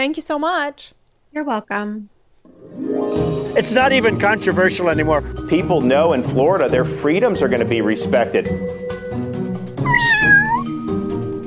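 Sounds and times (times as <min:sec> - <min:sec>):
speech: 0:00.0 - 0:08.8
cat meowing: 0:09.8 - 0:10.8.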